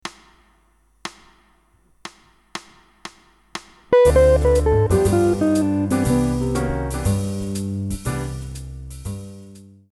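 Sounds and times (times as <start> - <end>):
guitar playing a scale exercise: 3.9 - 7.6.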